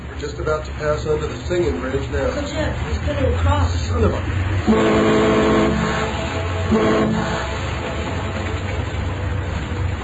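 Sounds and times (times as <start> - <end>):
low engine rumble: 0.0 - 10.0
speech: 0.2 - 5.8, 6.7 - 7.6
boat horn blasts: 4.6 - 9.4.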